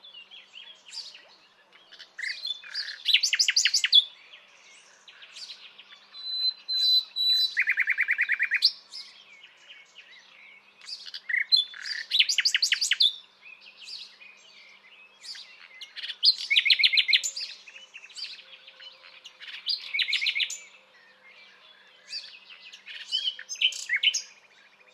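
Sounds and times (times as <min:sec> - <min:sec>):
common nightingale Luscinia megarhynchos song with rattles, whistle and trill: 0:00.0 - 0:24.9.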